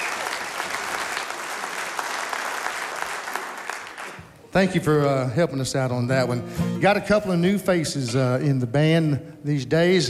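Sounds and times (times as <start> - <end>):
audience applauding a band at a live show: 0.0 - 4.4
speech: 4.5 - 10.0.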